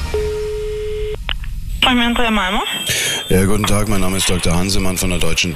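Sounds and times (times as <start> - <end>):
telephone line ringing with a steady tone: 0.1 - 1.2, 2.5 - 3.5
speech: 1.9 - 5.5
voice speaking over the phone line: 1.9 - 5.5.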